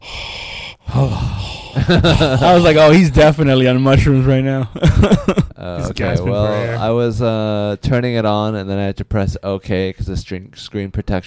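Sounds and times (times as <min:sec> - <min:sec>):
voice imitating heavy breathing over the phone: 0:00.0 - 0:03.0
speech: 0:00.9 - 0:11.2
laughter: 0:01.8 - 0:02.8, 0:04.8 - 0:06.8.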